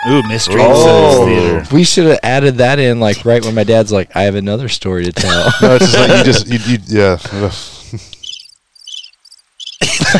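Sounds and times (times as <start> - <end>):
speech: 0.0 - 8.2
laughter: 5.1 - 6.8, 9.8 - 10.1
crickets chirping: 8.2 - 9.9.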